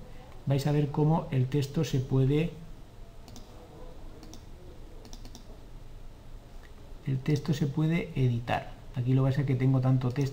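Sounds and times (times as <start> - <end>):
steady hiss: 0.0 - 10.3
speech: 0.5 - 2.6, 7.1 - 10.3
faint keystrokes on a computer keyboard: 4.2 - 5.5.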